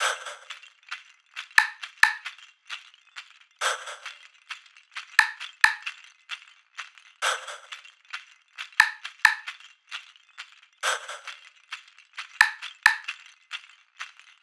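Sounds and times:
percussion loop from a drum sample pack: 1.6s - 2.2s, 5.2s - 5.9s, 8.8s - 9.5s, 12.4s - 13.0s.

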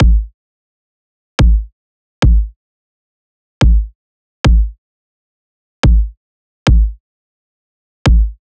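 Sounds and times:
pop kick drum loop: 0.0s - 0.3s, 1.4s - 2.5s, 3.6s - 3.9s, 4.5s - 4.8s, 5.8s - 7.0s, 8.1s - 8.4s.

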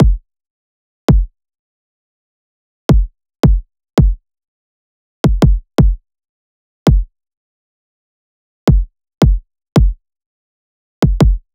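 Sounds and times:
pop kick drum loop: 0.0s - 0.2s, 2.9s - 4.2s, 5.2s - 6.0s, 6.9s - 7.1s, 8.7s - 10.0s, 11.0s - 11.4s.

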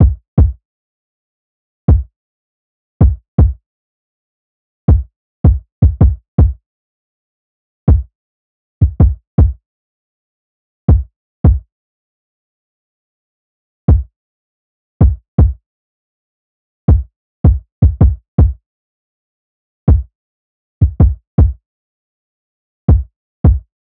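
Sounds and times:
kick drum loop: 0.0s - 0.6s, 1.9s - 2.1s, 3.0s - 3.6s, 4.9s - 6.6s, 7.9s - 8.1s, 8.8s - 9.6s, 10.9s - 11.7s, 13.9s - 14.1s, 15.0s - 15.6s, 16.9s - 18.6s, 19.9s - 20.1s, 20.8s - 21.6s, 22.9s - 23.7s.

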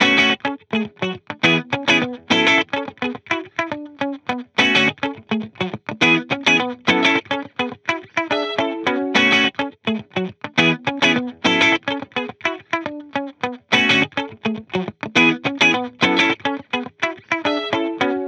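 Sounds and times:
pop guitar loop in F sharp minor: 0.0s - 18.2s.

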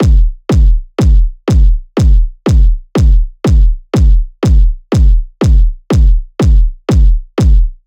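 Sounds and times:
kick drum loop: 0.0s - 7.8s.

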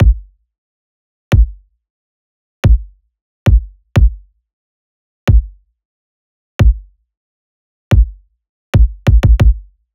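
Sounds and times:
pop kick drum loop: 0.0s - 0.3s, 1.3s - 1.6s, 2.6s - 4.2s, 5.3s - 5.6s, 6.6s - 6.9s, 7.9s - 8.2s, 8.8s - 9.7s.

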